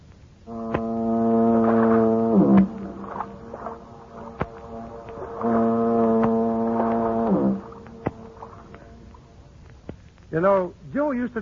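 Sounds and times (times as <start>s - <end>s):
foghorns booming across a bay: 0.5s - 9.3s
speech: 10.4s - 11.4s.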